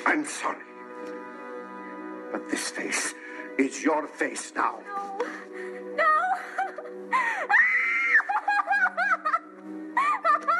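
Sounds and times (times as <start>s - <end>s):
speech: 0.3s - 1.2s, 2.3s - 7.6s
anguished cries and sobbing shrieks: 7.2s - 8.4s
actress as a girl screaming in horror: 7.5s - 8.4s
laughter: 8.1s - 10.5s.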